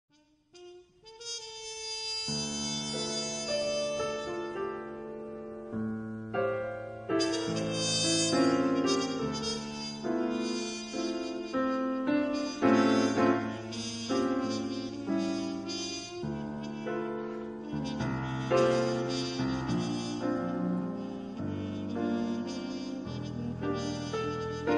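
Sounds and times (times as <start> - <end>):
trumpet: 0.0 - 5.7, 6.3 - 24.7
piano: 0.1 - 24.7.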